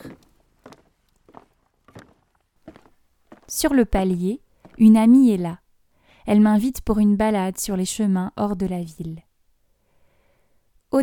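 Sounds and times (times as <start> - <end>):
footsteps on a hard floor at home: 0.1 - 3.6
speech: 3.5 - 5.6, 6.3 - 9.3.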